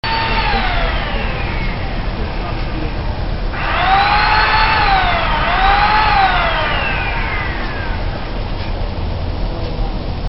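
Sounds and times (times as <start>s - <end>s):
wood being cut: 0.0s - 8.4s
back yard noises: 0.0s - 10.2s.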